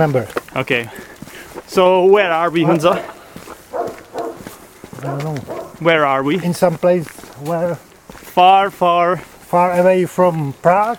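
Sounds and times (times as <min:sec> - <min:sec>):
speech: 0:00.0 - 0:01.1, 0:01.7 - 0:03.2, 0:05.0 - 0:10.9
faint noise: 0:00.0 - 0:10.9
soft scuffing sounds: 0:00.0 - 0:10.9
dog barking in the distance in a village near Poděbrady: 0:02.6 - 0:05.8.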